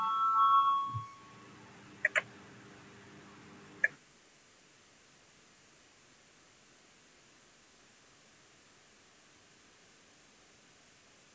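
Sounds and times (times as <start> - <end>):
short bright chime-like beeps of a parliament voting bell: 0.0 - 1.3
tonal electronic parliament voting bell: 0.0 - 1.4.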